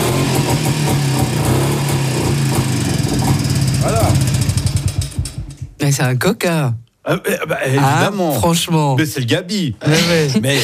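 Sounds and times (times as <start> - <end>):
single-cylinder motorcycle engine with two exhaust outlets running: 0.0 - 5.8
speech: 6.0 - 10.6.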